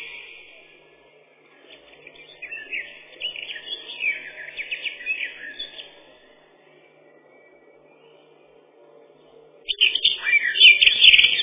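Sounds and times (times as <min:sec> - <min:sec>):
Eurasian blackcap Sylvia atricapilla singing: 0:01.9 - 0:06.0, 0:09.7 - 0:11.4.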